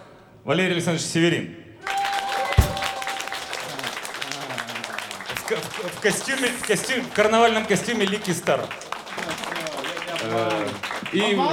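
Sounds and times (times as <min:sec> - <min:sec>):
speech: 0:00.4 - 0:02.0, 0:05.5 - 0:09.3, 0:10.2 - 0:11.5
audience applause as band musicians are introduced: 0:01.9 - 0:11.5
sharp thump: 0:02.6 - 0:03.2.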